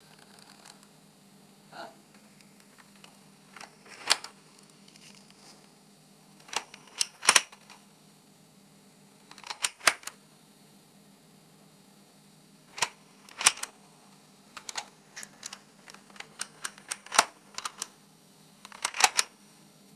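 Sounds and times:
hollow flimsy plastic UI clicks: 6.4s - 7.8s, 9.3s - 10.2s, 12.8s - 13.7s, 14.6s - 17.9s, 18.7s - 19.3s.

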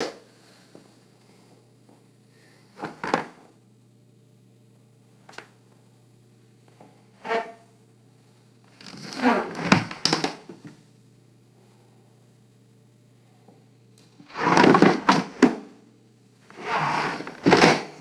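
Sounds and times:
light wooden chair scraping and bouncing: 8.9s - 10.4s, 14.3s - 15.7s, 16.5s - 17.9s.

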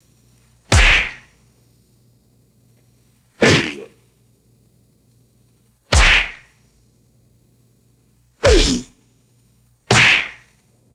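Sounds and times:
sharp theatrical backhand slaps: 0.7s - 1.3s, 3.4s - 3.8s, 5.9s - 6.5s, 8.4s - 8.9s, 9.9s - 10.5s.

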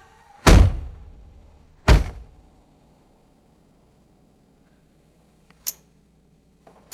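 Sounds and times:
car door slamming shut: 0.5s - 2.4s.

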